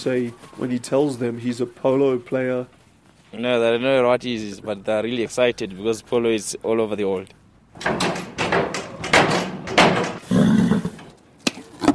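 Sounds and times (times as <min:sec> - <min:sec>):
speech: 0:00.0 - 0:08.2
horse kicking a wooden stable door: 0:07.8 - 0:10.3.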